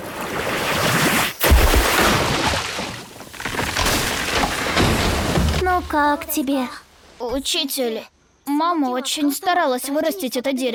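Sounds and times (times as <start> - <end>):
rushing water of a water ball spell: 0.0 - 5.6
speech: 5.9 - 10.7.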